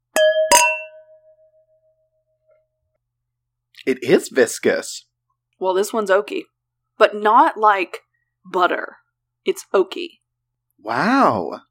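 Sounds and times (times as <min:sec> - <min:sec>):
wine glasses of Sauvignon Blanc clinking in a toast: 0:00.1 - 0:01.5
speech: 0:03.8 - 0:10.2, 0:10.8 - 0:11.6.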